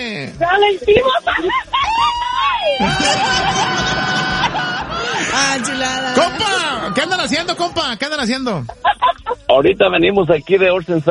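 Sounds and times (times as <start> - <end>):
speech: 0.2 - 1.7, 5.4 - 11.0
woman's Mexican grito yell: 0.5 - 6.4
laughter: 0.9 - 9.8.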